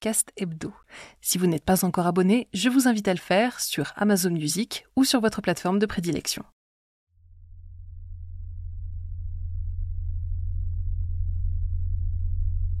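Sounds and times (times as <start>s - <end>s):
speech: 0.0s - 6.6s
steady low-pitched droning hum: 7.2s - 12.7s.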